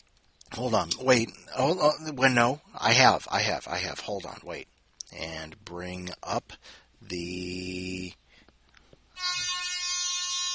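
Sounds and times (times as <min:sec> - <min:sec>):
speech: 0:00.6 - 0:08.2
air horn sound effect from phone app: 0:09.2 - 0:10.5.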